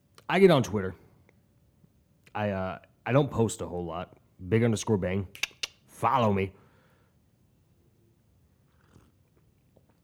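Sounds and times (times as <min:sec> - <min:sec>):
speech: 0:00.3 - 0:01.0, 0:02.4 - 0:05.4, 0:06.0 - 0:06.6
small mouth clicks: 0:05.3 - 0:06.0
sipping coffee: 0:08.6 - 0:10.0
swallow: 0:08.7 - 0:10.0.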